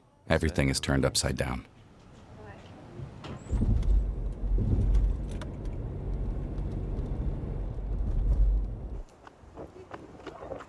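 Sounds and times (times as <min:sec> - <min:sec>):
speech: 0:00.3 - 0:01.7
car engine rumbling as a car arrives and parks: 0:03.4 - 0:09.1.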